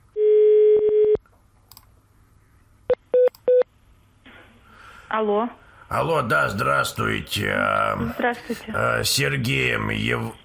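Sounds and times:
steady electronic telephone tone while dialling: 0.2 - 1.2
speech: 5.1 - 10.4.

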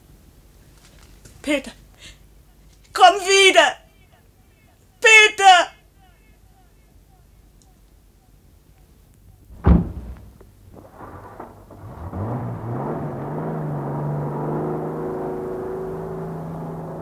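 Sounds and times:
speech: 1.4 - 2.2, 3.0 - 3.8
car driving up with engine rumble: 9.4 - 17.0
dull thud: 9.5 - 15.8.

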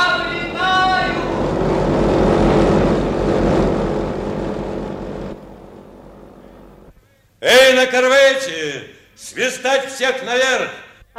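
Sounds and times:
airplane propeller engine roar starting up for takeoff: 0.0 - 6.9
speech: 7.8 - 11.1.

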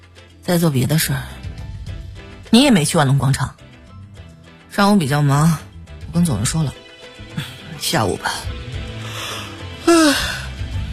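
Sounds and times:
speech: 0.5 - 1.4, 2.5 - 3.6, 4.8 - 6.8, 7.4 - 8.5
drowsy person yawning during a phone call: 9.8 - 10.5.

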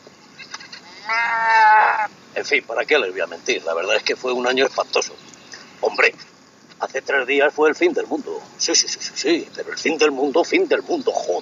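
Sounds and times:
sheep bleating: 1.0 - 2.1
speech: 2.4 - 11.4.

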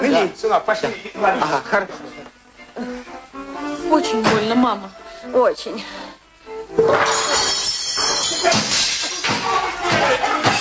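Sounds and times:
speech: 0.1 - 2.0, 2.8 - 3.0, 3.9 - 6.0, 6.7 - 7.5
dishes crashing and breaking in a household kitchen: 6.8 - 10.5.

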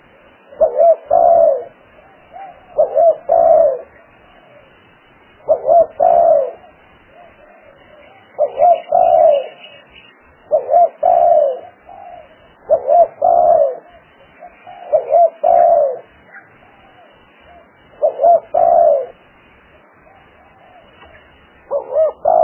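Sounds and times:
spotted dove cooing lure calls: 0.0 - 22.4.

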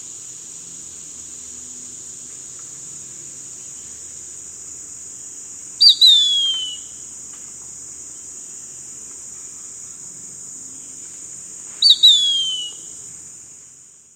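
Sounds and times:
bird calling with a downward whistled note: 5.8 - 6.9, 11.8 - 12.9.

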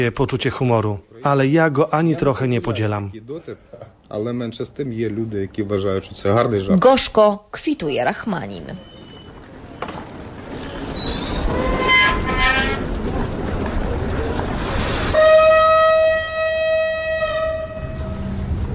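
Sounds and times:
speech: 0.0 - 8.9
train travelling on rails: 8.6 - 18.7
train horn blast: 11.4 - 12.9, 15.1 - 18.6.

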